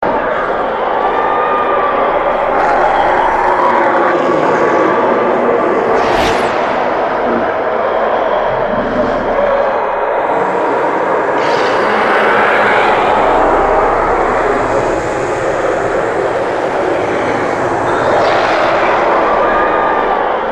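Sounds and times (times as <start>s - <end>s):
loud hell ambience: 0.0s - 20.5s.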